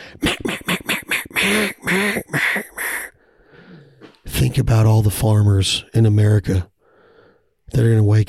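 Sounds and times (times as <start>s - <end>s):
ducks quacking: 0.2s - 3.1s
speech: 4.6s - 6.7s, 7.7s - 8.2s.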